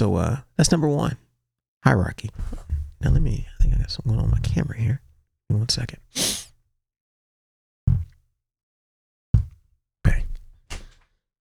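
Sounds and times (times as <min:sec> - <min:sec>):
speech: 0:00.0 - 0:01.2, 0:01.8 - 0:06.4
person sneezing: 0:06.2 - 0:06.5.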